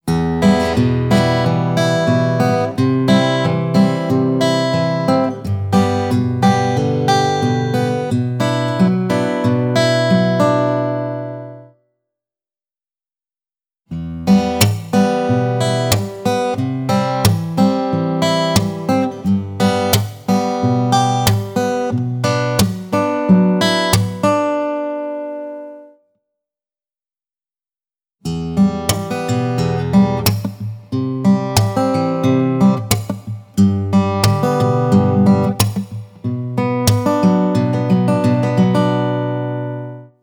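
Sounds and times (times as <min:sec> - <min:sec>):
acoustic guitar strumming: 0:00.1 - 0:11.7, 0:14.0 - 0:25.9, 0:28.3 - 0:40.2
acoustic guitar body slapping: 0:30.2 - 0:30.6, 0:32.7 - 0:33.4, 0:34.2 - 0:36.1.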